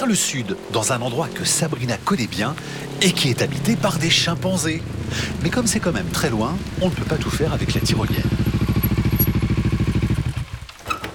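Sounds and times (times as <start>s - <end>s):
speech: 0.0s - 8.4s
motorcycle with sidecar chugging on bumpy roads in the Congo in light rain: 2.6s - 10.8s.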